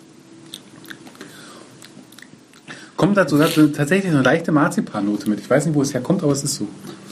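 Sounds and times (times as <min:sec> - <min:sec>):
low steady hum: 0:00.0 - 0:07.1
wet lip smacking while tasting beer: 0:00.4 - 0:02.8
speech: 0:03.0 - 0:07.0.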